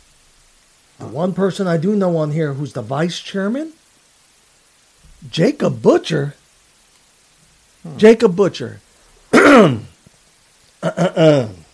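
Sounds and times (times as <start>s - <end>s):
speech: 1.0s - 3.8s, 5.2s - 6.4s, 7.8s - 8.8s, 9.4s - 9.9s, 10.8s - 11.6s
throat clearing: 9.3s - 10.0s, 10.8s - 11.6s.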